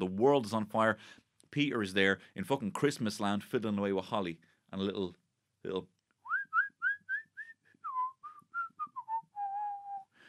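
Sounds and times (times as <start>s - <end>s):
speech: 0.0s - 6.0s
person whistling a cheerful bouncy upbeat melody: 6.3s - 10.2s.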